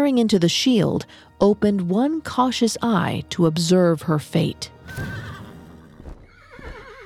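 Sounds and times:
speech: 0:00.0 - 0:05.3
gigantic winged horse neighing loudly: 0:04.8 - 0:07.0.

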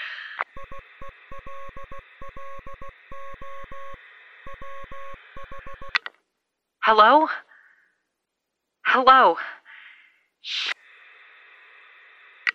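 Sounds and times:
static crackle: 0:00.4 - 0:06.0
Morse code beeps over radio: 0:00.5 - 0:06.0
speech: 0:01.5 - 0:04.0, 0:06.9 - 0:07.4, 0:09.0 - 0:09.6.

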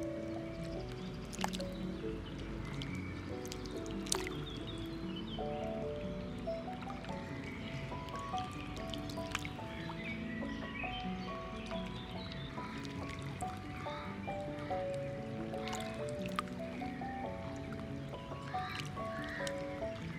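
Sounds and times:
dense watery murmur at a lakeside: 0:00.0 - 0:20.1
soft melody of held stepping notes: 0:00.0 - 0:20.1.

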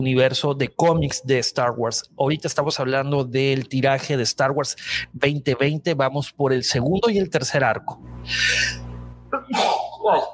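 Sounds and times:
low steady hum: 0:00.0 - 0:10.3
speech: 0:00.0 - 0:10.3
person sneezing: 0:08.3 - 0:10.3.

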